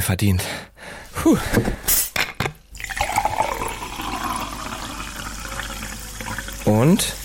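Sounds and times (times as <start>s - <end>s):
speech: 0.0s - 2.0s, 6.7s - 7.2s
quick clinks and knocks: 2.2s - 2.6s
drink pouring into a glass: 2.7s - 7.2s.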